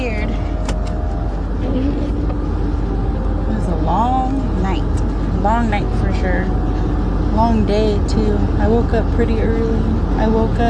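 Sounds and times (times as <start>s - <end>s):
car engine running: 0.0s - 10.6s
speech: 7.4s - 10.6s.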